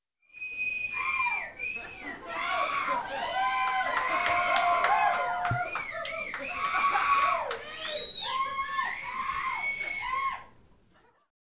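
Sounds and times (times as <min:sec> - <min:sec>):
crowd shouting: 0:01.0 - 0:10.5
laughter: 0:01.6 - 0:07.5
crowd clapping: 0:03.1 - 0:08.2.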